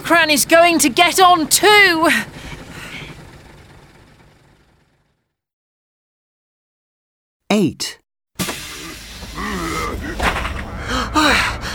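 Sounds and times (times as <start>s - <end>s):
bus engine idling: 0.0s - 5.2s, 8.4s - 11.7s
speech: 0.1s - 2.4s, 7.6s - 8.0s.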